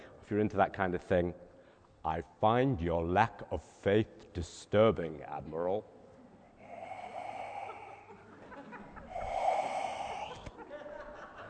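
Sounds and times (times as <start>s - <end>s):
speech: 0.3s - 6.0s
heavy rasping wheezy mechanical breathing: 6.5s - 10.6s
laughter: 7.6s - 9.4s, 10.2s - 11.4s.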